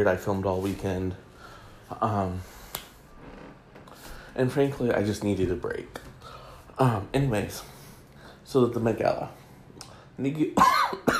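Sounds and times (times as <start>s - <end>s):
speech: 0.0s - 1.3s, 1.9s - 2.6s, 4.4s - 6.1s, 6.8s - 7.7s, 8.5s - 9.4s, 10.2s - 10.9s
person coughing: 10.6s - 11.1s.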